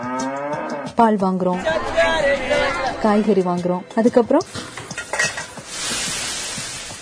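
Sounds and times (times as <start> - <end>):
speech: 1.0 - 4.7
food sizzling in a hot pan: 4.5 - 6.9.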